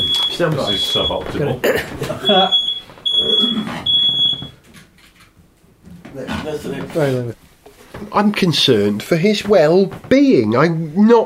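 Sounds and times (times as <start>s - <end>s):
alarm with high-pitched beeps: 0.0s - 1.4s, 2.2s - 4.6s
speech: 0.4s - 2.6s, 6.2s - 11.2s.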